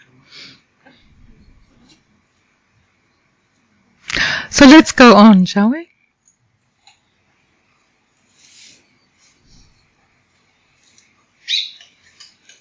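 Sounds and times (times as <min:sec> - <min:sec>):
speech: 0:04.5 - 0:05.9
bird chirping indoors: 0:11.4 - 0:12.0.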